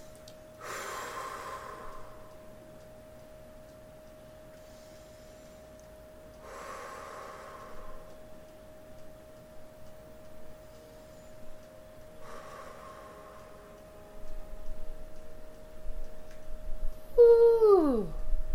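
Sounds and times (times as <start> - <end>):
slow deep breaths during a guided breathing exercise: 0.0 - 2.5, 4.6 - 8.3, 10.8 - 14.3
faint steady hum: 0.0 - 18.5.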